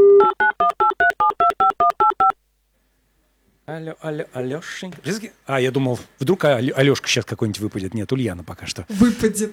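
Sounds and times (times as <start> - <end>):
touch-tone beeps of a telephone number being dialed: 0.1 - 2.4
speech: 3.9 - 9.4.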